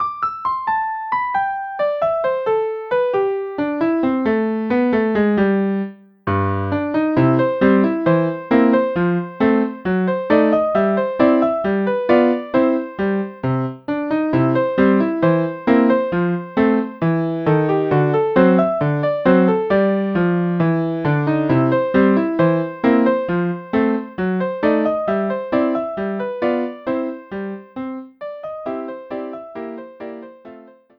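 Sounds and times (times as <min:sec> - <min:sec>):
piano solo: 0:00.0 - 0:30.9.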